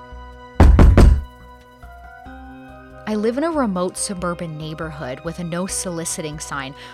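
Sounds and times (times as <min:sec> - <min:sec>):
heavy knocking on a door: 0:00.6 - 0:01.3
speech: 0:03.1 - 0:06.9.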